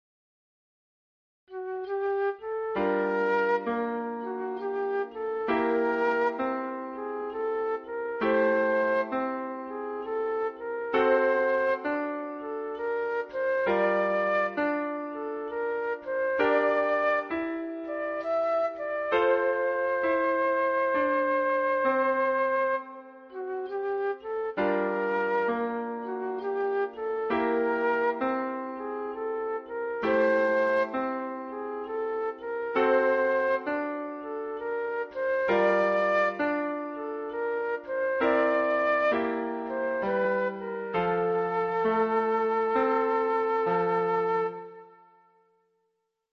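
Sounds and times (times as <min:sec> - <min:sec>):
oboe: 0:01.5 - 0:45.5.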